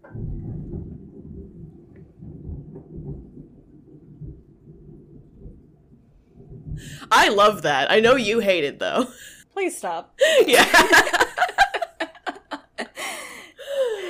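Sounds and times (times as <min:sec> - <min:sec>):
rolling thunder after a lightning flash: 0:00.0 - 0:07.0
speech: 0:07.1 - 0:11.2
laughter: 0:10.3 - 0:13.0.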